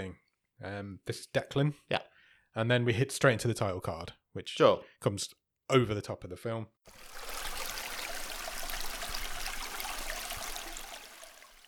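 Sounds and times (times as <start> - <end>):
speech: 0.0 - 7.3
running water rinsing freshly cut fish fillets: 6.9 - 11.6.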